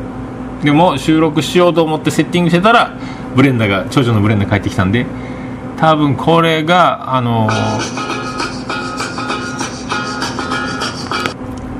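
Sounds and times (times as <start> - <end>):
speech: 0.6 - 8.2
phone ringtone from incoming call: 7.5 - 11.3.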